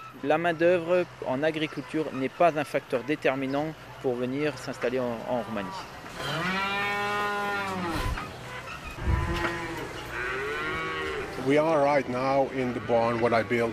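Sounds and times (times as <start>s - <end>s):
speech: 0.2s - 6.6s, 11.4s - 13.7s
dairy cows mooing in an airy shaded cattle barn in Romania: 5.4s - 13.7s.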